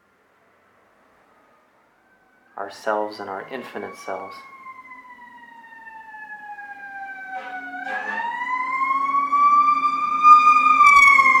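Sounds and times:
fire truck siren: 1.2 - 11.3
speech: 2.6 - 4.5.

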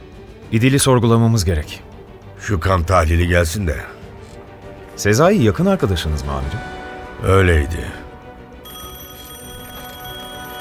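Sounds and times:
speech: 0.5 - 4.0, 5.0 - 8.0
telephone bell ringing: 8.6 - 10.6.

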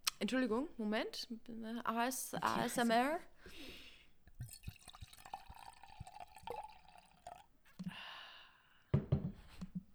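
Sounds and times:
speech: 0.2 - 3.8
drink pouring into a glass: 4.3 - 8.0.

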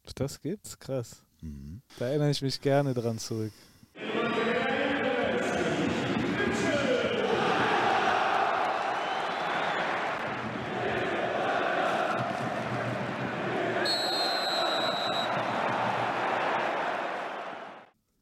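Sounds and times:
speech: 0.2 - 4.6
football stadium crowd cheering a substitution: 4.0 - 17.9
whistles: 8.7 - 10.2, 13.8 - 15.6.

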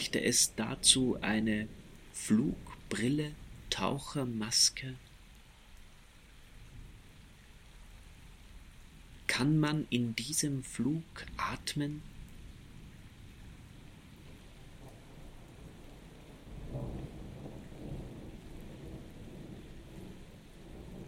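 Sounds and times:
speech: 0.0 - 5.0, 9.3 - 12.1
steady rain: 0.0 - 21.0
rolling thunder: 12.2 - 21.0.

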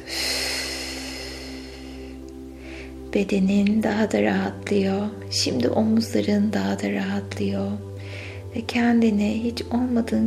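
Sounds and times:
deep breath in through the nose during a guided breathing exercise: 0.0 - 3.0, 8.0 - 8.5
low constant hum: 0.0 - 10.2
speech: 3.1 - 7.9, 8.5 - 10.2.

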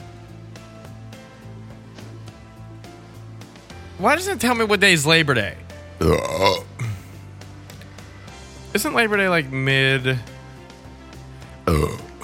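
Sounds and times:
speech: 4.0 - 6.7, 8.8 - 10.3
loud drawn-out burp: 6.0 - 7.0, 11.6 - 12.2.

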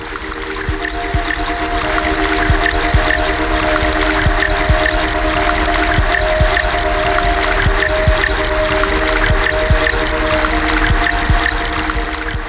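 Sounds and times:
faint sustained tones: 0.0 - 12.4
rushing river water: 0.0 - 12.4
soft rhythmic ticks: 0.0 - 12.4.

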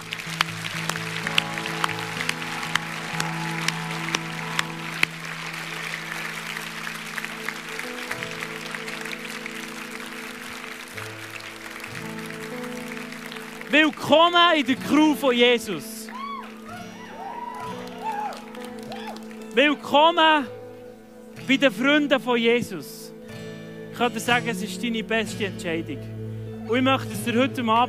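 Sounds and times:
audience clapping: 0.0 - 20.4
sustained keyboard chords: 0.0 - 27.8
speech: 13.8 - 15.9, 19.6 - 20.6, 21.5 - 23.0, 24.0 - 26.1, 26.7 - 27.8.

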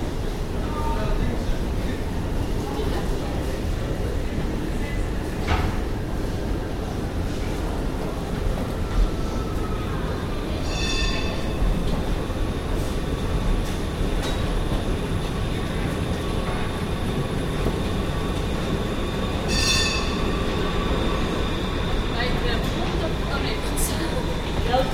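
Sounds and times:
tramcars arriving and departing in a tram tunnel: 0.0 - 24.9.

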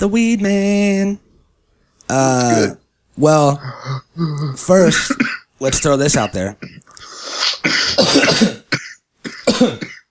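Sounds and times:
speech: 0.0 - 1.2, 2.1 - 8.6, 9.5 - 10.0
harsh raspy coughs: 3.6 - 10.0.

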